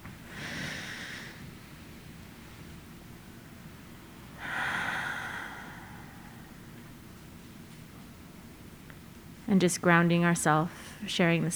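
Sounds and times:
group taking a deep breath together: 0.0s - 9.1s
soft steady hiss: 0.0s - 11.5s
speech: 9.5s - 11.5s.

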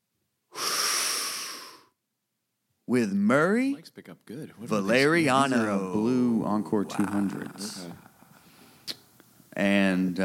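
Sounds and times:
deep inhaled breath: 0.5s - 2.0s, 8.1s - 9.0s
speech: 2.9s - 8.1s, 9.6s - 10.2s.

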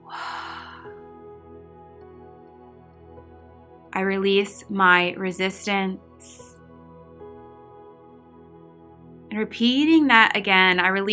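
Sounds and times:
deep breath released through an open mouth during a meditation: 0.1s - 0.9s
speech: 4.0s - 6.4s, 9.4s - 11.1s.

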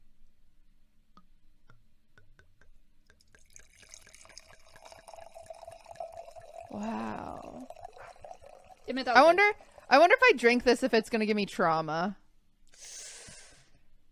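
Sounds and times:
sharp drips: 3.1s - 10.8s
wine pouring into a glass from a just-opened bottle: 3.1s - 10.8s
speech: 6.7s - 7.5s, 8.9s - 12.2s.

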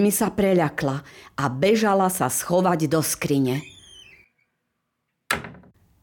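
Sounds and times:
speech: 0.0s - 3.7s
faint creaking whistly tone: 3.6s - 4.7s
door shoved open with a loud bang: 5.3s - 5.8s.

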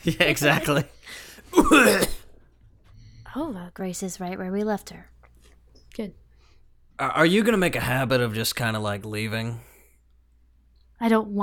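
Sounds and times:
speech: 0.0s - 2.2s, 3.4s - 5.1s, 6.0s - 6.2s, 7.0s - 9.7s, 11.0s - 11.4s
short rough raspy cough: 1.2s - 2.4s.

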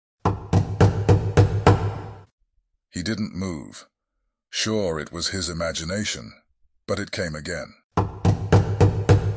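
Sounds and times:
heavy knocks on a wooden door: 0.3s - 2.2s, 8.0s - 9.3s
speech: 3.0s - 3.9s, 4.5s - 7.8s.

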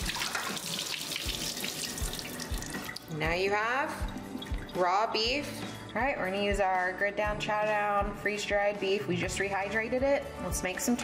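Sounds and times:
water draining from rehydrated freeze-dried beef through a colander: 0.0s - 3.2s, 4.0s - 6.2s
speech: 3.2s - 4.1s, 4.8s - 11.0s.

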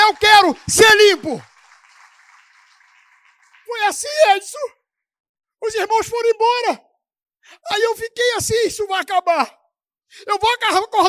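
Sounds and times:
crowd applauding: 0.0s - 4.5s
speech: 0.5s - 1.5s, 3.7s - 4.8s, 5.6s - 11.0s.

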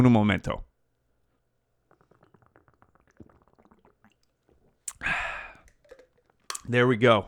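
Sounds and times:
speech: 0.0s - 0.7s, 6.7s - 7.2s
person sipping and swallowing water: 1.3s - 6.7s
breathy gasp after drinking: 4.9s - 5.7s.

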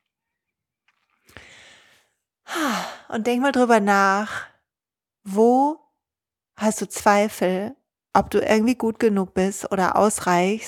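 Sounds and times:
deep breath in: 1.4s - 3.1s
speech: 3.1s - 4.5s, 5.2s - 5.8s, 6.6s - 10.6s.

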